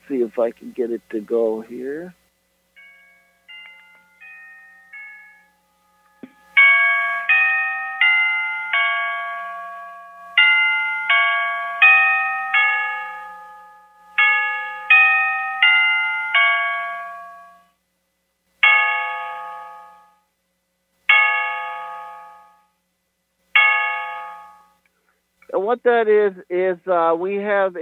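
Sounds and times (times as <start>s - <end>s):
speech: 0.1s - 2.2s, 25.7s - 27.8s
Black Forest cuckoo clock chiming a melody in a home hallway: 2.8s - 17.8s, 18.6s - 20.3s, 21.1s - 22.8s, 23.6s - 24.8s.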